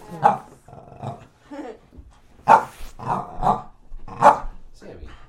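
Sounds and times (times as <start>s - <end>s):
dog barking and growling: 0.2s - 1.3s, 2.5s - 4.6s.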